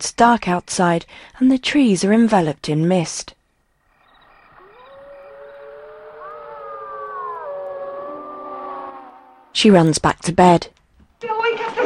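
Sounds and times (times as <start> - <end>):
speech: 0.0 - 3.4, 9.6 - 11.8
wind howling outside at night among misty trees: 3.8 - 9.9.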